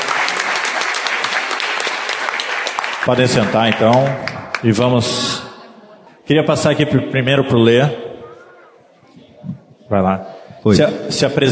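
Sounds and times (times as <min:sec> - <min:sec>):
church congregation applauding couples: 0:00.0 - 0:05.1
speech: 0:03.0 - 0:05.4, 0:06.3 - 0:08.0, 0:09.9 - 0:11.5.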